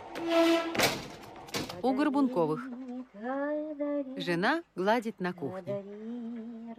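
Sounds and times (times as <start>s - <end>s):
speech: 0.2s - 1.0s, 1.7s - 6.1s
metal garage gate clanging shut: 0.2s - 1.9s.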